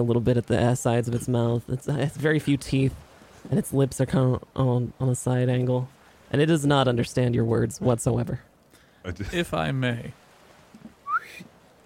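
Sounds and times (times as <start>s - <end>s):
speech: 0.0s - 10.2s
short sharp whistle signal with upward pitch slide: 11.0s - 11.4s.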